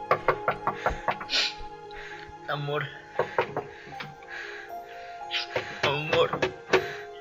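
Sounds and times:
sharp rapid knocking on a bedroom door: 0:00.1 - 0:01.3, 0:03.2 - 0:04.1, 0:05.5 - 0:06.9.

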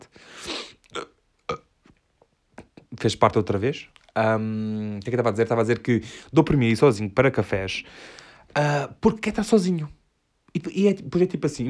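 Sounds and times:
person burping: 0:00.8 - 0:01.7
speech: 0:03.0 - 0:10.0, 0:10.6 - 0:11.6.

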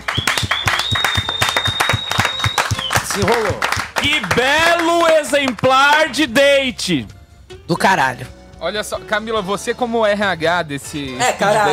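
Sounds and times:
thin high-pitched whistle: 0:00.0 - 0:03.3
small group applauding: 0:00.0 - 0:06.3
speech: 0:03.2 - 0:11.7.

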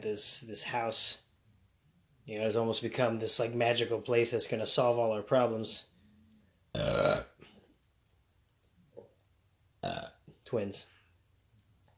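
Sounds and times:
speech: 0:00.0 - 0:01.2, 0:02.3 - 0:05.9, 0:06.8 - 0:07.3, 0:10.5 - 0:11.0
loud burp: 0:06.8 - 0:07.6, 0:09.8 - 0:10.2.

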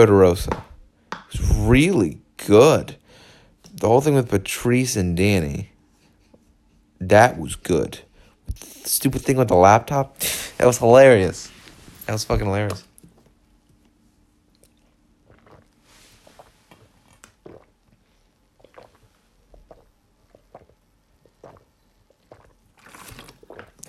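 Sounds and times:
speech: 0:00.0 - 0:00.7, 0:01.3 - 0:03.0, 0:03.8 - 0:05.7, 0:07.0 - 0:11.5, 0:12.1 - 0:12.9
person sipping and swallowing water: 0:13.8 - 0:23.8.

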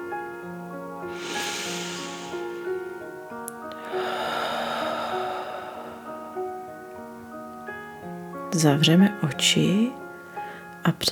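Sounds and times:
soft steady music: 0:00.0 - 0:11.1
sharp inhale through the nose: 0:01.1 - 0:06.6
slow breathy exhale through the mouth: 0:01.1 - 0:07.1
speech: 0:08.6 - 0:10.0, 0:10.8 - 0:11.1.

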